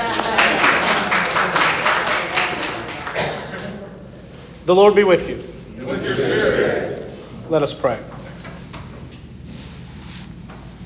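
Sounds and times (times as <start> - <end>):
congregation audience applause: 0.0 - 3.7
speech: 4.7 - 6.2, 7.5 - 8.1.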